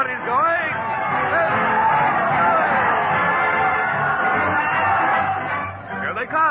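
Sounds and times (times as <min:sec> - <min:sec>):
large crowd cheering and shouting: 0:00.0 - 0:06.4
scattered whoops from the crowd: 0:00.8 - 0:05.5.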